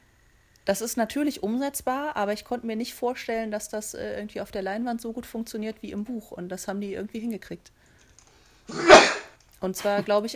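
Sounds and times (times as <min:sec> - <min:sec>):
speech: 0:00.7 - 0:07.8, 0:08.7 - 0:09.0, 0:09.6 - 0:10.3
single forceful sneeze: 0:08.7 - 0:09.4.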